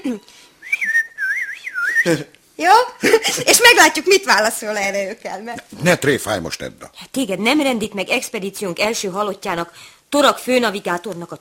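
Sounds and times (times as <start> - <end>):
speech: 0.0 - 1.0, 2.0 - 11.3
person whistling a short wavering melody: 0.6 - 2.2.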